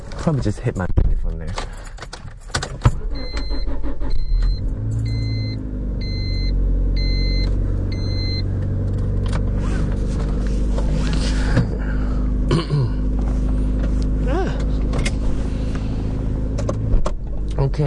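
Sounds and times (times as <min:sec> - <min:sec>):
car engine rumbling while reversing out of a sloping driveway: 0:00.0 - 0:17.8
speech: 0:00.2 - 0:01.7
short evenly spaced beeps: 0:03.1 - 0:08.4.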